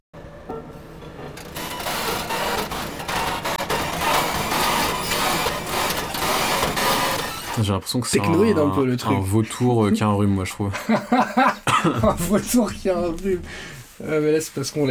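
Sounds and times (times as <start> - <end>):
construction machine clattering, rattling and grinding: 1.3 - 8.6
speech: 7.6 - 14.8
laughter: 10.7 - 12.7.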